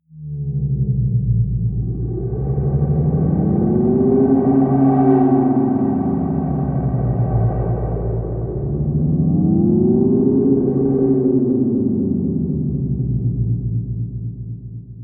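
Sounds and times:
deep swaying drone: 0.1 - 15.0.

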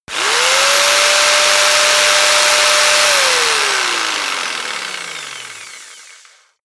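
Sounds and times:
jigsaw engine running fast: 0.0 - 6.6.

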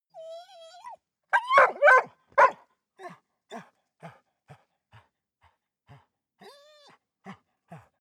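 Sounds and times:
dog barking: 1.4 - 2.6.

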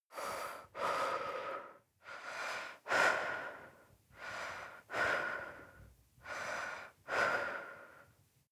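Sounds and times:
female breathing normally: 0.1 - 8.2.

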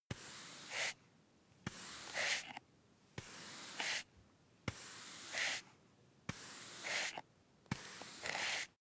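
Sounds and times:
hand broom slowly sweeping into a dustpan: 0.1 - 1.0, 1.7 - 2.6, 3.2 - 4.1, 4.7 - 5.7, 6.3 - 8.7.

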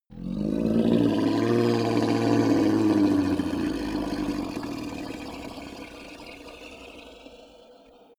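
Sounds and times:
hellhound roar growl: 0.1 - 6.0.

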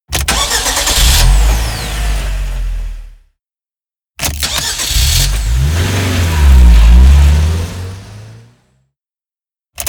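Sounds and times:
car starting: 0.2 - 3.2, 4.3 - 8.7.

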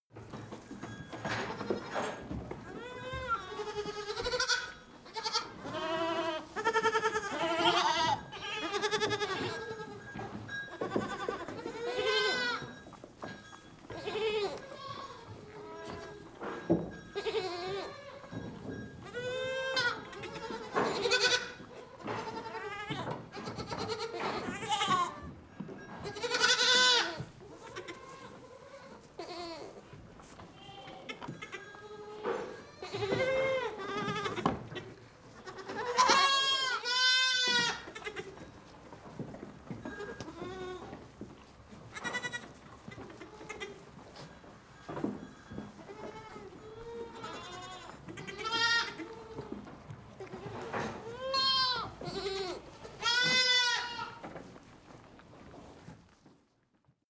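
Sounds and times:
goat barn ambience: 0.0 - 57.0
lambs in a goat barn: 1.5 - 12.7, 13.9 - 16.4, 17.1 - 18.4, 19.0 - 25.2, 26.0 - 29.9, 30.5 - 38.5, 39.9 - 41.1, 41.9 - 44.3, 45.7 - 49.6, 50.2 - 54.2.

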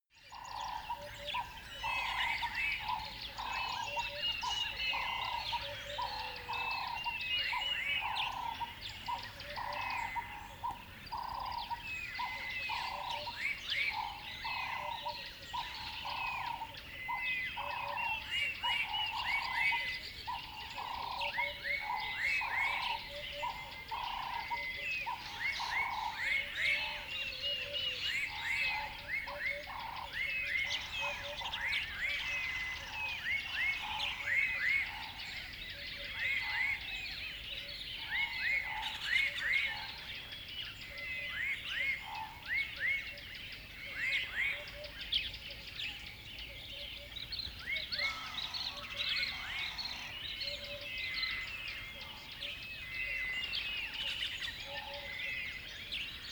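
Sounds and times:
dawn birds calling at a river bed: 0.5 - 56.3.

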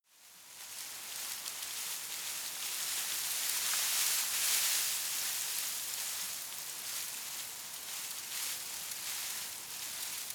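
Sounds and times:
shrub with tiny leaves rustling softly: 0.1 - 10.3.

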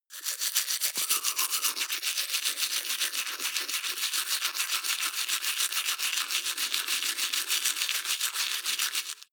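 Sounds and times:
wet teeth brushing with open mouth: 0.0 - 9.3.

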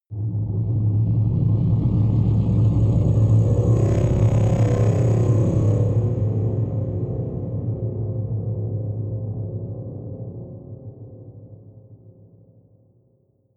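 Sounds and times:
dark ring rumble: 0.1 - 8.5.

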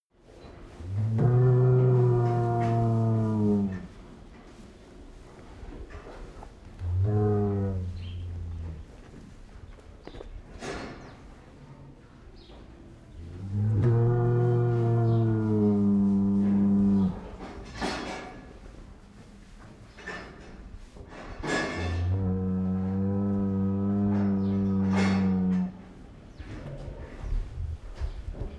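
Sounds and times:
cow barn ambience: 0.2 - 28.5.

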